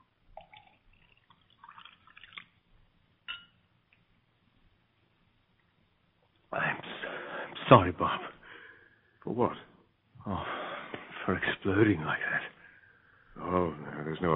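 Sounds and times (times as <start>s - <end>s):
water pouring into a glass: 0.3s - 2.7s
speech: 7.7s - 8.3s, 9.2s - 9.7s, 10.3s - 10.5s, 11.3s - 12.5s, 13.5s - 14.3s.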